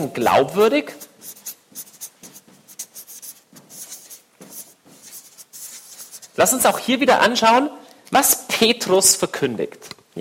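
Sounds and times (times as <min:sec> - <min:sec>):
speech: 0:00.0 - 0:01.4, 0:06.4 - 0:10.1
pen scratching in handwriting: 0:00.5 - 0:06.4.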